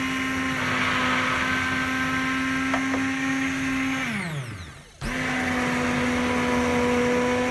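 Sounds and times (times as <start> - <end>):
immersion blender whirring while pureeing lentil soup: 0.0 - 7.5.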